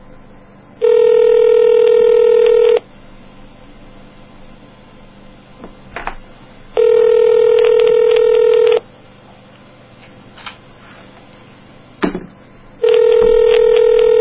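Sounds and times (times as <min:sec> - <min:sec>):
telephone ringback tone on an outgoing call: 0:00.8 - 0:02.8, 0:06.8 - 0:08.8, 0:12.8 - 0:14.1.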